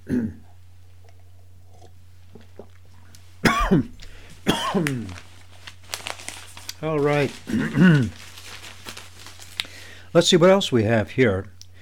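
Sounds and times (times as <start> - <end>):
throat clearing: 0.0 - 0.5, 3.5 - 5.1
low steady hum: 0.0 - 11.8
person sipping coffee: 1.1 - 2.9
speech: 3.7 - 4.0, 4.7 - 5.2, 6.8 - 8.2, 10.1 - 11.5.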